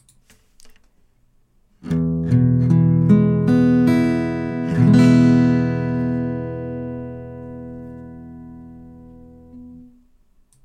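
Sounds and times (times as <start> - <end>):
E guitar chord: 1.9 - 10.0.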